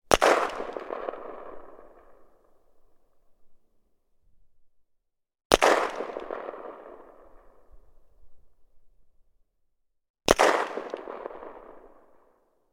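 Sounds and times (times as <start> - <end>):
SKS rifle gunshot: 0.1 - 2.1, 5.5 - 7.3, 10.3 - 12.1.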